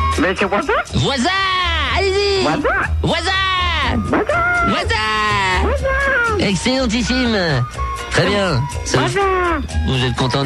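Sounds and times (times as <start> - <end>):
speech: 0.1 - 10.4
person imitating animal noises, barking, yelping and bleating: 3.9 - 6.5, 9.1 - 9.7.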